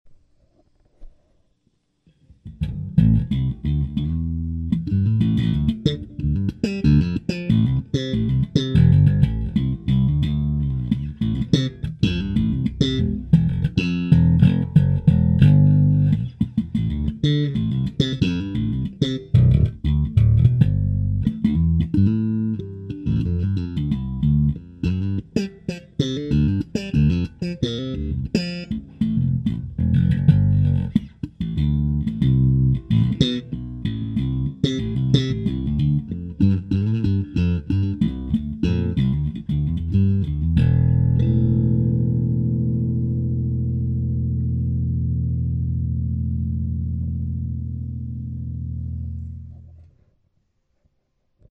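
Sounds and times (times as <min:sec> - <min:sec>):
bass guitar slap: 0:02.4 - 0:49.8.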